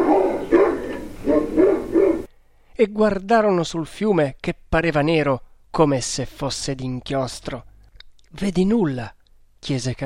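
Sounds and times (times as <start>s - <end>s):
dog barking furiously: 0.0s - 2.3s
speech: 2.8s - 7.7s, 8.3s - 10.0s.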